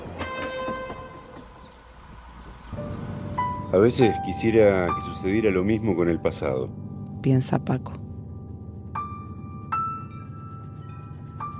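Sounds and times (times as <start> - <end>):
train on rails pulling away: 0.0 - 4.5
speech: 3.7 - 8.0.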